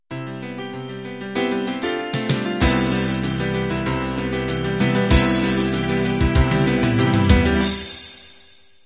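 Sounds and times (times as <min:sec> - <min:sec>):
folk ballad intro: 0:02.2 - 0:08.0.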